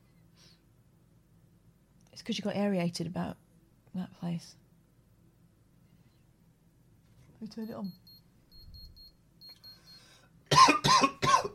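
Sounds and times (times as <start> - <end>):
speech: 2.2 - 3.4, 4.0 - 4.6, 7.4 - 8.0
harsh raspy coughs: 10.5 - 11.5.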